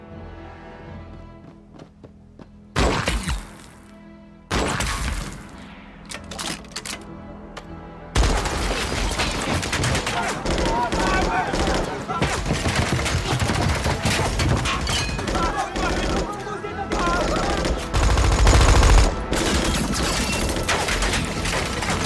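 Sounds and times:
gunfire from camp watchtowers: 2.8s - 3.6s, 8.2s - 16.3s, 16.9s - 22.0s
voices: 9.9s - 14.0s, 15.1s - 17.9s.

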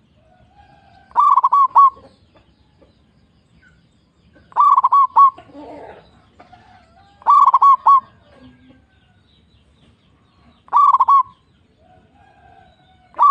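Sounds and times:
local zebra dove singing rapid coo notes: 0.0s - 2.2s, 4.5s - 8.9s, 10.6s - 13.2s.

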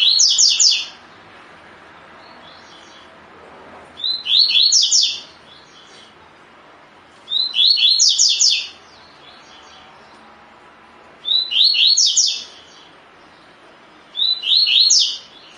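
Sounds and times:
double-collared seedeater singing clipped slurred whistles: 0.0s - 1.0s, 4.0s - 5.9s, 7.3s - 9.7s, 11.2s - 12.9s, 14.1s - 15.5s.

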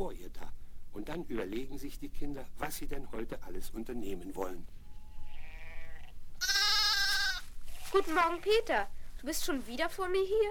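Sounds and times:
speech: 0.0s - 4.8s, 7.9s - 10.4s
two goats bleating in a stable in the morning: 4.9s - 7.5s.

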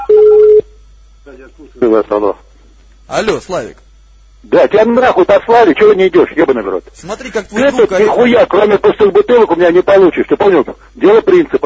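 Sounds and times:
steady mid-pitched phone tone placing a call: 0.0s - 0.8s
speech: 1.4s - 2.5s, 3.1s - 3.8s, 4.4s - 11.6s.

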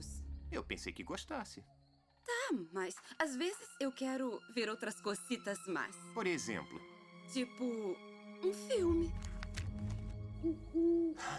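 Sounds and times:
speech: 0.7s - 1.8s, 2.5s - 11.3s
owl hooting in a remote wild spot: 10.4s - 11.3s.

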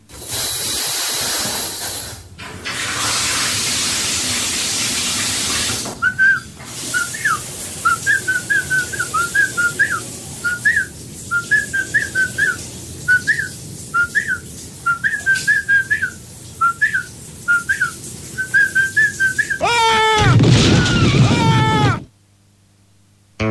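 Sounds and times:
steady hiss: 0.0s - 23.4s
man whistling a tune in the bath: 6.0s - 19.6s
loud noisy burst: 19.6s - 22.1s.

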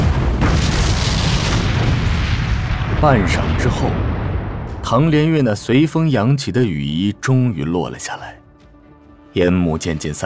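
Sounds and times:
explosions booming one after another: 0.0s - 6.2s
speech: 3.0s - 4.1s, 4.8s - 8.4s, 9.3s - 10.2s.

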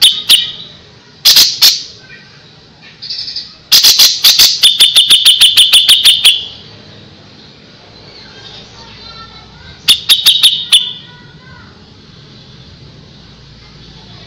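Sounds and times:
grey-cheeked bulbul song: 0.0s - 2.0s, 3.0s - 6.8s, 9.8s - 11.2s.

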